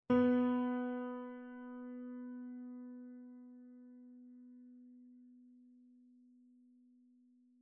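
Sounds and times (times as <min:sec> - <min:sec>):
piano note: 0:00.1 - 0:04.4.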